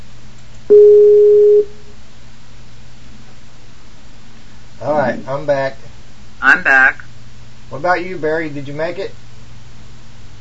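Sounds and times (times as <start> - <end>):
steady electronic telephone tone: 0.7 - 1.8
speech: 5.3 - 5.8, 7.8 - 9.2.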